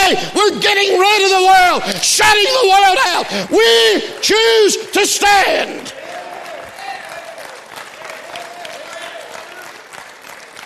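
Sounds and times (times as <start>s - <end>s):
speech: 0.1s - 6.0s
large congregation clapping: 2.5s - 10.6s.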